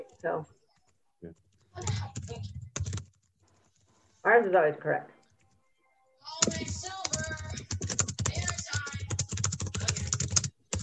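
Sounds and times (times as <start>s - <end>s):
speech: 0.1s - 0.6s, 1.2s - 2.6s, 4.2s - 5.2s
typing on a computer keyboard: 1.8s - 3.2s, 6.4s - 10.8s.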